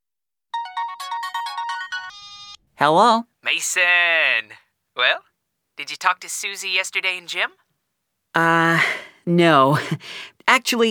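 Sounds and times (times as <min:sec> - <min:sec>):
telephone ringing with a repeating electronic melody: 0:00.6 - 0:02.6
speech: 0:02.8 - 0:07.6, 0:08.4 - 0:10.9.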